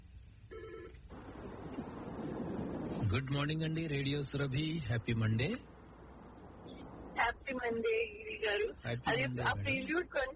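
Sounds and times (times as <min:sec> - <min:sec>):
low steady hiss: 0:00.0 - 0:10.3
telephone ringing for a radio call-in: 0:00.5 - 0:01.0
speech: 0:03.1 - 0:05.8, 0:07.6 - 0:10.3.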